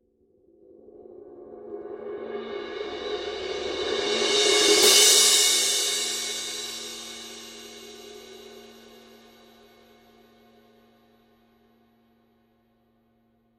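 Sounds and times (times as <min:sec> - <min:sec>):
Paiste 2002 20 medium crash cymbal swell: 0:02.7 - 0:09.6.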